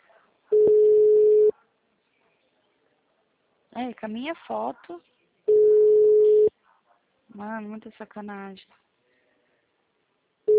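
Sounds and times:
telephone ringing tone on an outgoing call: 0.5s - 1.5s, 5.5s - 6.5s
speech: 3.8s - 5.2s, 7.4s - 8.8s.

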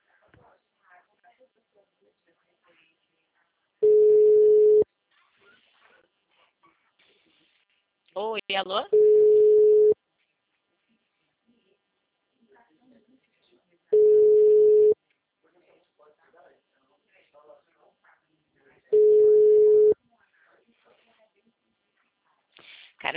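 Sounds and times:
telephone busy signal single-pitch beeps: 3.8s - 4.8s, 9.0s - 10.0s, 14.0s - 15.0s, 19.0s - 19.9s
speech: 8.2s - 9.1s.

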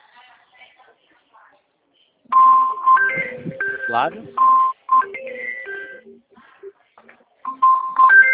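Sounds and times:
mobile phone ringtone melody from an incoming call: 2.3s - 6.2s, 7.5s - 8.3s
speech: 3.9s - 4.6s.

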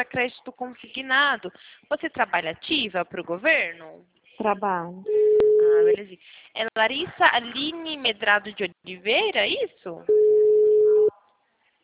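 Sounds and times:
speech: 0.0s - 10.4s
mid-pitched telephone hold tone beep on a dropped call: 5.1s - 6.0s, 10.1s - 11.1s.

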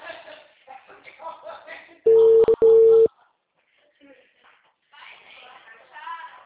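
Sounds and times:
telephone busy signal: 2.1s - 3.1s.

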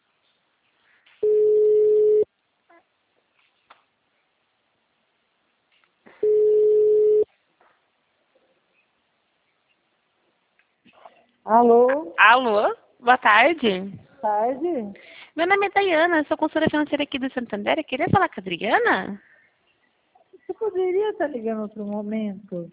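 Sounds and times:
telephone ringback tone on an outgoing call: 1.2s - 2.3s, 6.2s - 7.3s
speech: 11.5s - 19.3s, 20.6s - 22.7s.

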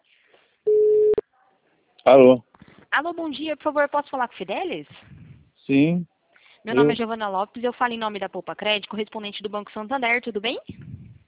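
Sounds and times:
telephone line tone as a call is placed: 0.7s - 1.2s
speech: 2.1s - 5.1s, 5.7s - 10.9s.

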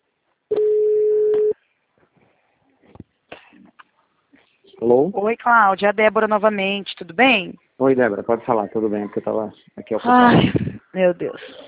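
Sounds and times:
telephone call connecting tone: 0.5s - 1.6s
speech: 4.8s - 11.6s.

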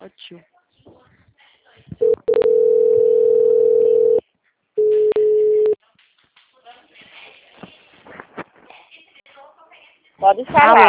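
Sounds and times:
telephone line tone after a dropped call: 2.0s - 4.2s, 4.8s - 5.8s
rustling noise: 6.0s - 9.0s.

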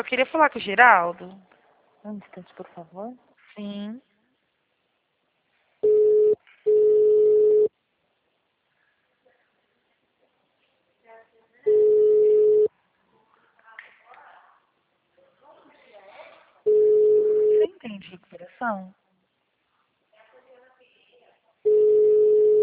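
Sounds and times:
speech: 0.0s - 4.1s, 17.8s - 19.0s
telephone ringing tone on a call: 5.8s - 7.7s, 11.7s - 12.7s, 16.7s - 17.6s, 21.7s - 22.6s.

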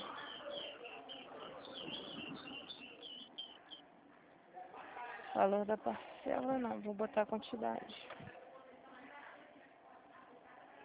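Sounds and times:
small birds chirping and twittering: 0.0s - 3.9s
speech: 5.4s - 8.2s.

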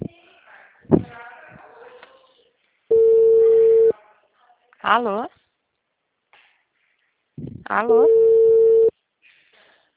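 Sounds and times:
steady mid-pitched telephone ringback tone: 2.9s - 3.9s, 8.0s - 8.9s
speech: 4.9s - 5.4s, 7.7s - 8.2s.

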